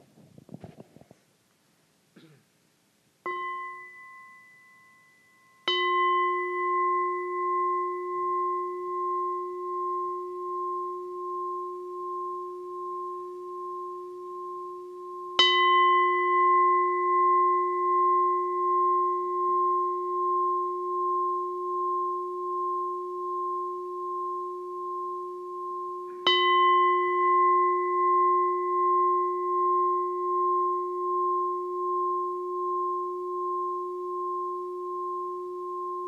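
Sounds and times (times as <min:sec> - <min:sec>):
meditation bell struck in a Buddhist practice: 0:03.2 - 0:36.0.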